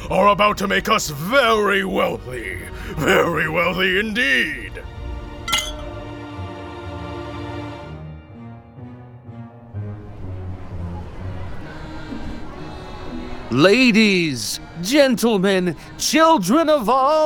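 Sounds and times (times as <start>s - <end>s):
speech: 0.1s - 4.9s, 13.5s - 17.2s
glasses clinking in a toast: 5.5s - 6.0s.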